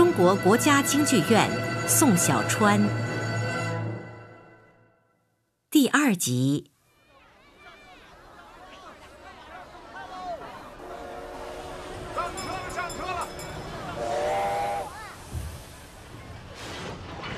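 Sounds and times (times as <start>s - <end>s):
speech: 0.2s - 3.1s, 5.7s - 6.7s
northbound passenger train whistle blasts: 10.8s - 12.2s, 14.0s - 14.9s
hissing steam from a northbound passenger train: 13.9s - 17.2s.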